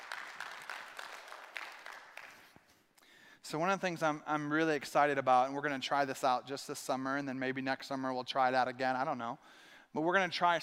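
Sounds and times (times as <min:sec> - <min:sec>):
audience applause: 0:00.0 - 0:02.5
speech: 0:03.5 - 0:10.6.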